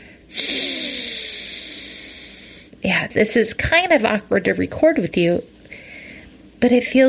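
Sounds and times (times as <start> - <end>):
exhale through a single nostril during alternate nostril breathing: 0.0 - 2.7
speech: 2.8 - 5.6, 6.6 - 7.0.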